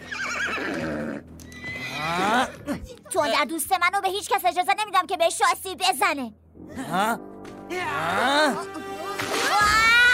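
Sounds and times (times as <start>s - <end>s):
horse neighing: 0.0s - 2.7s
speech: 3.1s - 9.8s.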